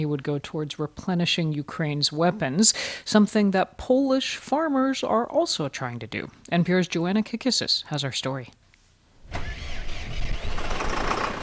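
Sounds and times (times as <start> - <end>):
speech: 0.0 - 8.6
heavy tractor engine cranking and idling on a wheat, corn and beet farm: 9.2 - 11.4.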